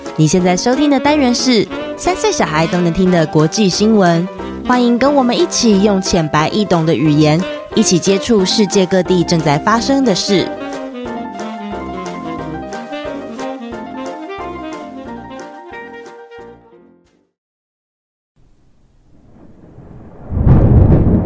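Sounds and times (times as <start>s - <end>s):
speech: 0.2s - 10.7s
short melodic music passage: 10.5s - 15.0s
spring thunder rumbling and cracking: 18.9s - 21.2s.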